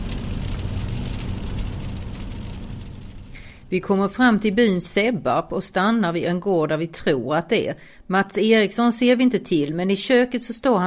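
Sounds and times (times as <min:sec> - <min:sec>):
car engine and tyre rumble on a country road: 0:00.0 - 0:03.7
road noise hiss from a car driving on a country road: 0:00.0 - 0:03.8
speech: 0:03.7 - 0:10.8.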